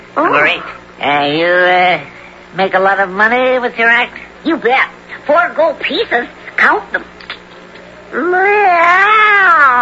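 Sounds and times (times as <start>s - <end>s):
speech: 0.2s - 7.1s, 8.1s - 9.8s
cat meowing: 8.2s - 9.8s.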